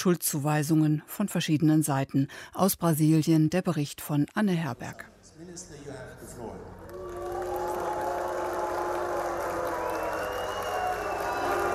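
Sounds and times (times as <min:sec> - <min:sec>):
speech: 0:00.0 - 0:06.8
large crowd whistling shrilly: 0:07.0 - 0:11.7.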